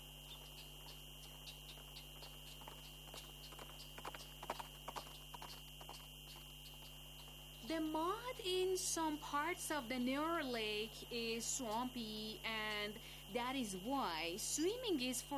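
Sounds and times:
horse hooves clip-clopping: 0:00.0 - 0:07.4
speech: 0:07.7 - 0:15.3.

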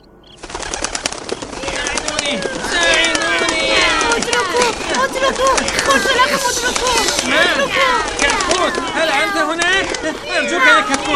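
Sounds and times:
faint bird chirps and calls: 0:00.0 - 0:01.6
flock of birds taking flight with flapping wings: 0:00.2 - 0:11.1
laughter: 0:00.5 - 0:11.1
speech: 0:05.0 - 0:11.1.

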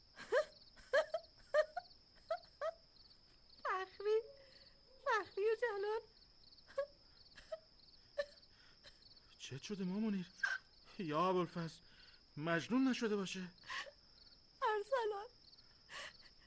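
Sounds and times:
woman sobbing and wailing: 0:00.1 - 0:02.8, 0:03.7 - 0:06.0, 0:06.7 - 0:09.1, 0:10.4 - 0:10.7, 0:13.6 - 0:14.0, 0:15.9 - 0:16.4
speech: 0:09.5 - 0:10.4, 0:11.0 - 0:11.8, 0:12.4 - 0:13.6.

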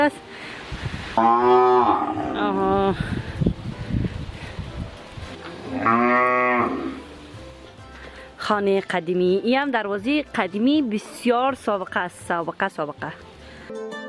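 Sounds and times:
speech: 0:00.0 - 0:00.3, 0:01.2 - 0:03.3, 0:05.8 - 0:06.3, 0:08.5 - 0:14.0
cow mooing: 0:01.2 - 0:02.6, 0:05.6 - 0:07.1
rustling and shuffling: 0:02.9 - 0:05.7.

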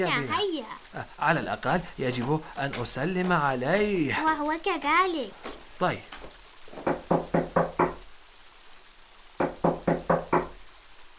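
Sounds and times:
speech: 0:00.0 - 0:06.2
sharp knocks on the wooden door of a room at home: 0:06.7 - 0:08.0, 0:09.4 - 0:10.6.

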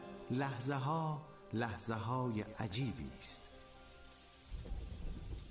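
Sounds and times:
speech: 0:00.3 - 0:03.5
steady rain hissing across a surface: 0:01.9 - 0:05.4.

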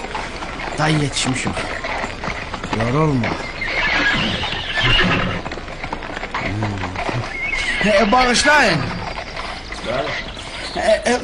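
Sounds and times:
hooves clip-clopping: 0:00.0 - 0:11.2
rough noise: 0:00.0 - 0:11.2
speech: 0:00.8 - 0:01.8, 0:02.8 - 0:03.5, 0:04.1 - 0:05.5, 0:06.4 - 0:09.0, 0:09.8 - 0:11.2
horse whinnying: 0:02.7 - 0:10.4.

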